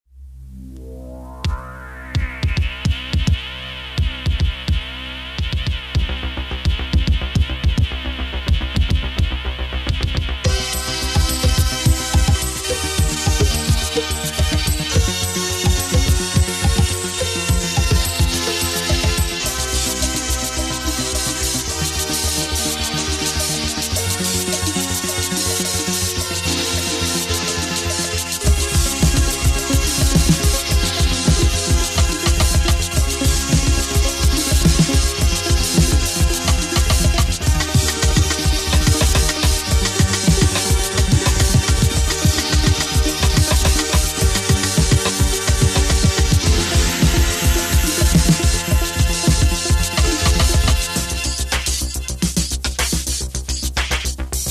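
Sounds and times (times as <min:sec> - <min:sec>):
Juno60 synthesizer: 0:00.0 - 0:54.5.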